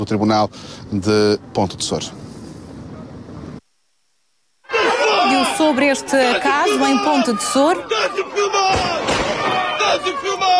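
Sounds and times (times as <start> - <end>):
speech: 0.0 - 2.3, 5.6 - 8.3
chaotic crowd: 4.6 - 10.5
loud agitated shouting voices: 4.6 - 10.5
gunshots fired into the air from a courthouse balcony: 8.6 - 9.7.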